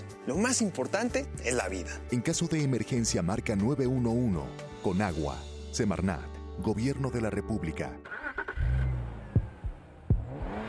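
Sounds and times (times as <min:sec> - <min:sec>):
speech: 0:00.2 - 0:08.2
BMW 3 Series car accelerating with engine revving: 0:08.1 - 0:10.6.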